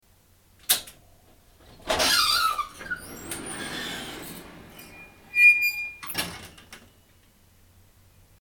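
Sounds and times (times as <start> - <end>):
garage door opening: 0.7 - 7.0.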